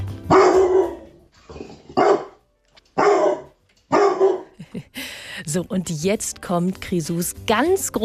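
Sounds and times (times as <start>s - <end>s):
dog barking: 0.3s - 1.2s, 1.8s - 2.4s, 3.0s - 4.6s
speech: 4.8s - 8.0s.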